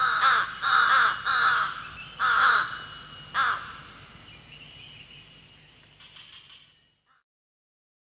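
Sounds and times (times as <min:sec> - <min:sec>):
Slender-billed Crow giving harsh nasal caws at Danum in Borneo: 0:00.0 - 0:03.9
quiet forest background at Danum in Borneo: 0:00.0 - 0:07.3.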